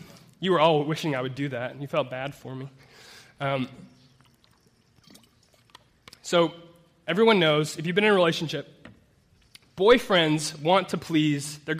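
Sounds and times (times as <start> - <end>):
low hum: 0.0 - 11.7
speech: 0.4 - 4.0, 6.3 - 8.8, 9.8 - 11.7
water being sipped: 2.7 - 7.0, 9.0 - 9.8
water being poured: 3.4 - 7.0
faint swallow: 3.6 - 6.2.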